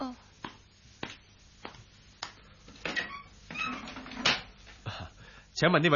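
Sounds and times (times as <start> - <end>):
door opening with a rattling, creaking swing: 2.8 - 4.5
speech: 5.6 - 5.9.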